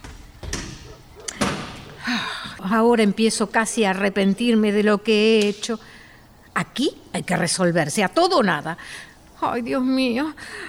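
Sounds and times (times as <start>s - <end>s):
door slamming shut: 0.0s - 2.1s
speech: 2.1s - 6.0s, 6.6s - 10.6s.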